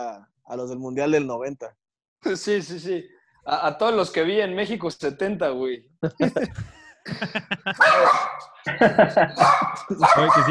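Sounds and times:
speech: 0.0 - 10.4
laughter: 6.0 - 10.4
dog barking: 7.8 - 8.5, 9.4 - 10.4.

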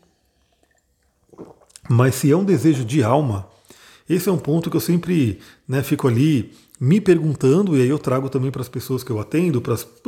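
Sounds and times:
swallowing water: 0.0 - 2.0
sipping water: 0.0 - 4.1
speech: 1.9 - 3.5, 4.1 - 10.0.

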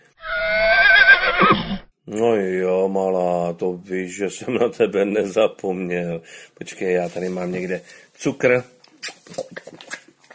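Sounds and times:
horse neighing in a loud shrill whinny: 0.1 - 1.9
speech: 2.1 - 9.9.

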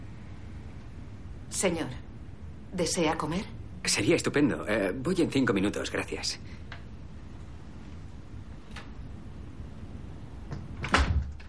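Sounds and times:
speech: 1.5 - 2.1, 2.7 - 6.6
door closing: 10.5 - 11.4.

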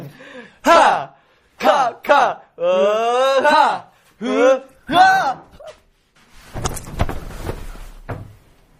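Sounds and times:
speech: 0.1 - 5.4
chair being kicked: 6.5 - 8.4.

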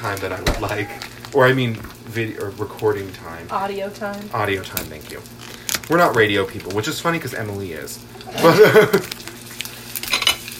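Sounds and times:
speech: 0.0 - 9.2
butter sizzling and popping in a hot frying pan: 0.0 - 10.5
laughter: 8.2 - 9.2
utensils clinking: 10.0 - 10.5.

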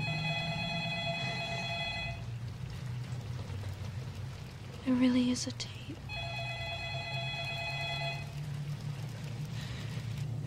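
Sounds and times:
telephone ringing with an electronic trill: 0.0 - 2.2, 6.1 - 8.4
constant rain-like hiss: 2.4 - 10.4
speech: 4.8 - 6.0.

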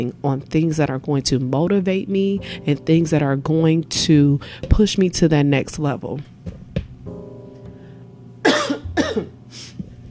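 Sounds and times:
speech: 0.0 - 6.6
faint hum: 0.0 - 10.1
person coughing harshly: 8.4 - 9.4.

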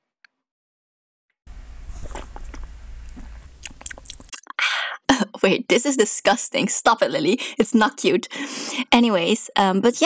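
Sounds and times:
slurping sips of tea: 1.8 - 4.4
mouth clicks and smacks: 2.0 - 4.6
speech: 5.4 - 10.0.

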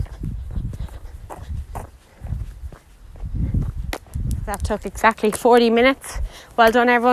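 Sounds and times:
footsteps of a group jogging at an easy pace in an exercise session: 0.0 - 5.5
speech: 4.5 - 7.1.

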